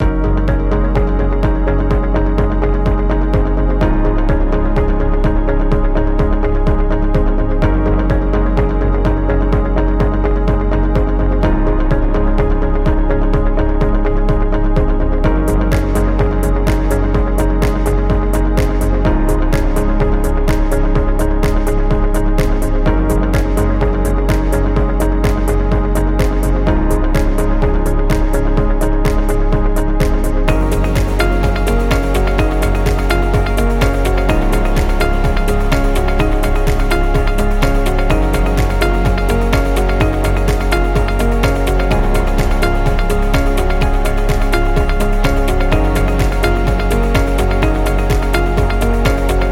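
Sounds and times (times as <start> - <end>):
upbeat corporate music loop: 0.0 - 49.4.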